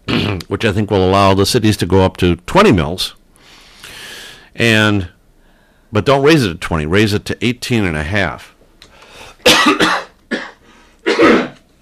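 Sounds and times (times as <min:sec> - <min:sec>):
person coughing into a microphone: 0:00.1 - 0:00.5, 0:09.4 - 0:11.7
speech: 0:00.3 - 0:03.2, 0:04.6 - 0:05.1, 0:05.9 - 0:08.5, 0:09.4 - 0:10.0.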